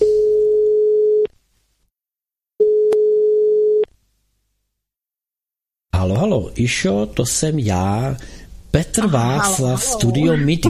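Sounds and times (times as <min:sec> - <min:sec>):
telephone ringback tone of outgoing call: 0:00.0 - 0:01.3, 0:02.6 - 0:03.8
speech: 0:06.2 - 0:10.6.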